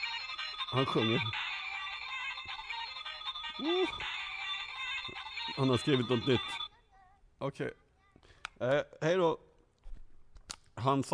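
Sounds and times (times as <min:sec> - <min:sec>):
phone ringtone electronic melody: 0:00.0 - 0:06.7
speech: 0:00.7 - 0:01.5, 0:03.6 - 0:04.1, 0:05.5 - 0:06.6, 0:07.4 - 0:07.8, 0:08.6 - 0:09.5, 0:10.8 - 0:11.1.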